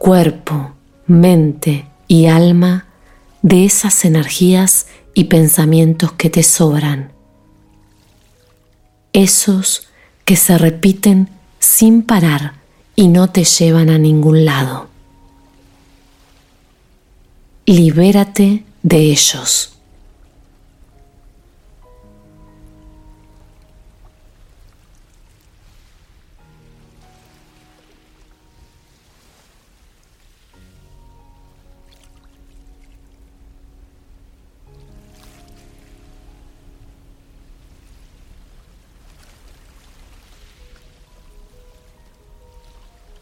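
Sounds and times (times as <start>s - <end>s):
speech: 0.0s - 2.8s, 3.4s - 7.2s, 9.2s - 14.9s, 17.7s - 19.7s
soft sustained musical tones: 0.0s - 43.2s
steady even wash of ocean water: 7.2s - 9.1s, 14.5s - 17.6s, 19.7s - 43.2s.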